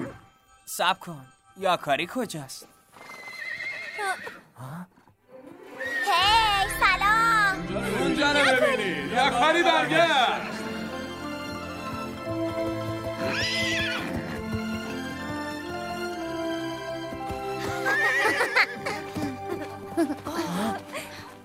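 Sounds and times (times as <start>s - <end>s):
music: 0.0s - 4.1s, 4.7s - 21.4s
speech: 0.7s - 2.7s, 7.7s - 10.5s
horse neighing: 2.9s - 5.0s, 13.2s - 14.4s, 17.6s - 18.8s
laughter: 17.6s - 21.1s.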